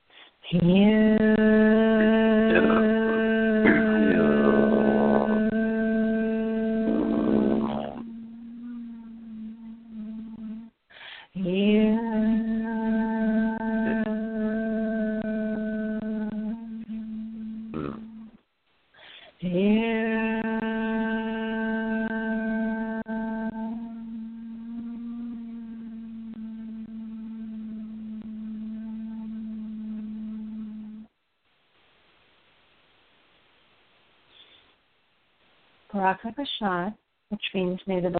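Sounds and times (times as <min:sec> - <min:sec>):
speech: 0:00.5 - 0:01.2, 0:37.8 - 0:38.1
person chanting: 0:00.5 - 0:18.4, 0:19.4 - 0:31.1.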